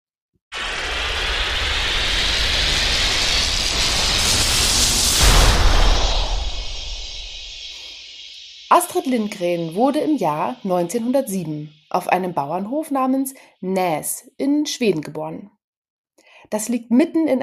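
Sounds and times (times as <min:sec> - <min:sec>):
airplane taking off: 0:00.5 - 0:11.9
speech: 0:08.7 - 0:15.6, 0:16.4 - 0:17.4.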